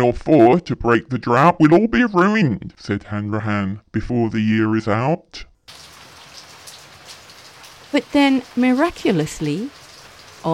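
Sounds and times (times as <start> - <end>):
speech: 0.0 - 5.9, 7.9 - 9.8
bright water drips: 5.7 - 10.5
raindrops pattering: 5.7 - 10.5.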